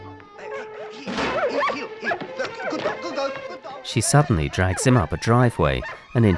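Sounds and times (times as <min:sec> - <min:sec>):
laughter: 0:00.0 - 0:06.3
dog barking and yipping excitedly: 0:00.4 - 0:06.3
speech: 0:00.4 - 0:06.3.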